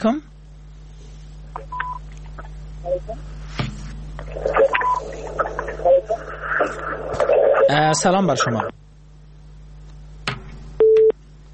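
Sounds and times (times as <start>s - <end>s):
speech: 0.0s - 0.3s, 7.7s - 8.8s
low constant hum: 0.0s - 11.5s
telephone busy tone after a call drops: 4.5s - 6.3s, 10.8s - 11.1s.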